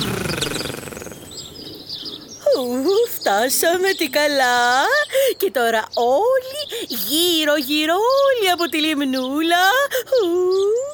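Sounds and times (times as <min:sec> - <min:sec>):
parrot calling: 0:00.0 - 0:01.5
nightingales singing: 0:00.0 - 0:10.9
speech: 0:03.3 - 0:10.8.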